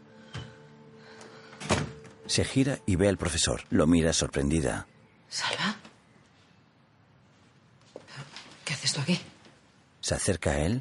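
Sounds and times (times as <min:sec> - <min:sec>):
door being closed in a house: 0:01.6 - 0:02.2
speech: 0:02.3 - 0:05.8, 0:09.1 - 0:09.3, 0:10.1 - 0:10.7.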